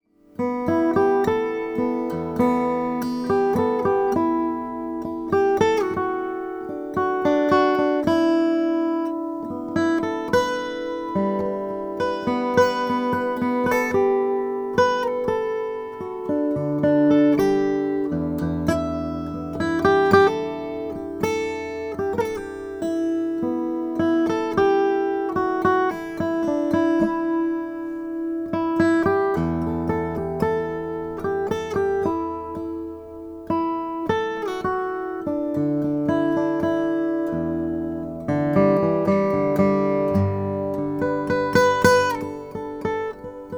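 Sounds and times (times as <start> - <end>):
Brazilian rosewood Sexauer F14 acoustic guitar playing: 0.0 - 43.5.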